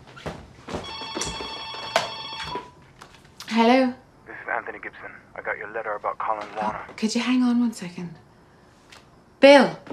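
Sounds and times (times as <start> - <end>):
home telephone ringing: 0.8 - 2.8
speech: 3.6 - 4.0, 4.7 - 8.3, 9.4 - 9.9.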